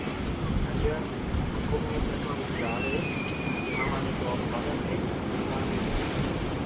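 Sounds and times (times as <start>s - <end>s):
surf at a beach promenade: 0.0s - 6.6s
wind at a beach promenade: 0.0s - 6.6s
faint whistle-like tone: 2.6s - 3.9s.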